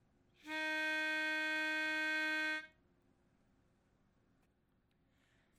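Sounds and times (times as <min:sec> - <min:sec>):
music: 0:00.4 - 0:02.8.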